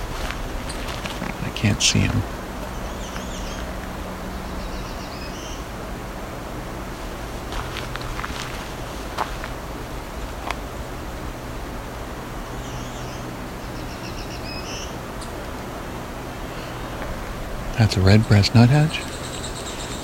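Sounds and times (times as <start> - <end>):
soft crunching footsteps: 0.0 - 3.9, 7.0 - 10.6
black-throated green warbler singing high buzzy phrases: 0.0 - 5.8, 12.4 - 15.4, 16.4 - 20.0
steady outdoor hiss: 0.0 - 20.0
speech: 1.6 - 2.4, 17.8 - 19.1.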